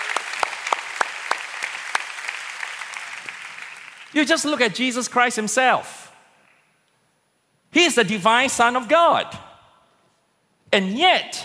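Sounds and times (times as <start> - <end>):
congregation applauding: 0.0 - 4.2
speech: 4.1 - 6.0, 8.0 - 9.4, 10.7 - 11.4.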